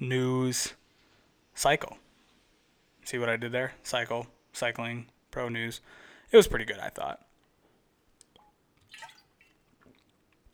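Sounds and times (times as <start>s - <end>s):
speech: 0.0s - 0.8s, 1.6s - 2.0s, 3.1s - 7.2s
faint wet sips of water: 8.2s - 10.5s.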